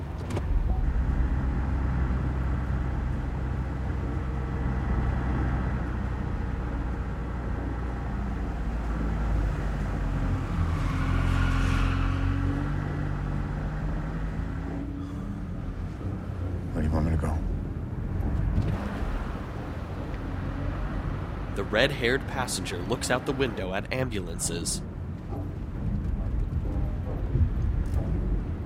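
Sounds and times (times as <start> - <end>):
car engine running as the vehicle drives through a parking structure: 0.0 - 11.3, 12.6 - 28.6
speech: 21.7 - 25.0.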